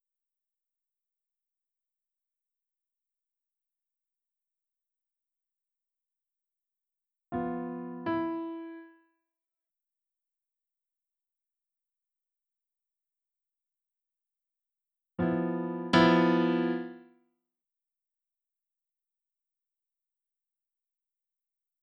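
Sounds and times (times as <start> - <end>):
piano: 7.4 - 9.0, 15.2 - 17.0.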